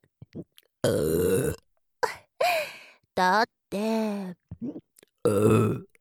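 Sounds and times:
speech: 0.8s - 1.5s, 3.2s - 3.5s
loud drawn-out burp: 0.8s - 1.6s, 4.6s - 5.9s.

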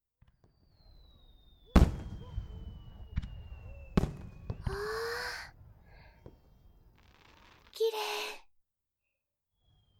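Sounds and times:
fireworks bursting: 0.3s - 7.8s.

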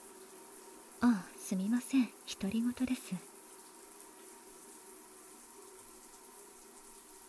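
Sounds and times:
running water splashing while rinsing off soap foam: 0.0s - 7.2s
speech: 1.0s - 3.3s.

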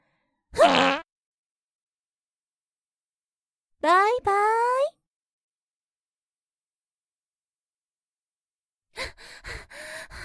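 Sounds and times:
loud buzzy fart: 0.6s - 1.1s
speech: 3.8s - 4.9s.

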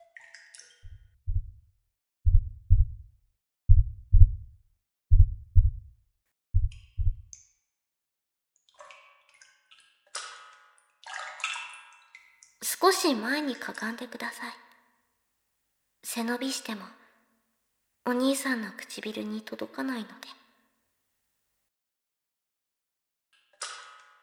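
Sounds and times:
heartbeat: 0.8s - 1.7s, 2.3s - 6.0s, 6.6s - 7.3s
speech: 12.8s - 14.7s, 16.2s - 17.0s, 18.1s - 20.4s.

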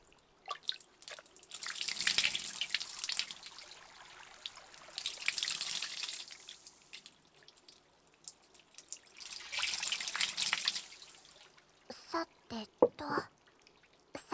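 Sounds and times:
water dripping: 0.0s - 14.2s
water running from a tap for rinsing: 0.6s - 7.6s, 8.2s - 11.6s.

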